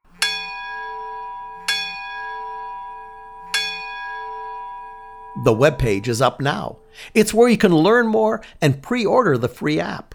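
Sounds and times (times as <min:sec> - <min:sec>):
church bell tolling: 0:00.0 - 0:08.6
speech: 0:05.4 - 0:10.1.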